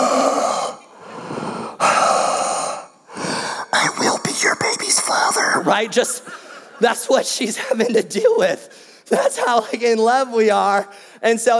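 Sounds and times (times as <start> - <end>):
voice imitating heavy raspy mouth breathing over the phone: 0.0 - 5.3
speech: 5.6 - 11.5.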